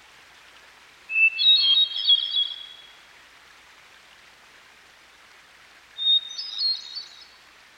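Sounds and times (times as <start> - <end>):
hermit thrush singing fluted whistling song by a stream: 1.1 - 2.8, 6.0 - 7.2.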